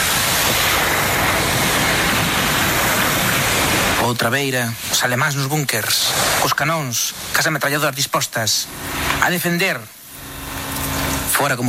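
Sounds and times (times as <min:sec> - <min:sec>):
sea waves washing against a beach: 0:00.0 - 0:11.6
speech: 0:04.1 - 0:10.0, 0:11.4 - 0:11.6.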